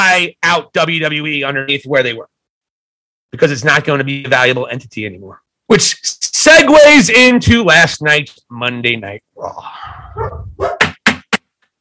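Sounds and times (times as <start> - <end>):
speech: 0.2 - 2.4, 3.3 - 10.7
dog whining growl: 9.9 - 10.8
dog barking loudly: 10.2 - 10.9.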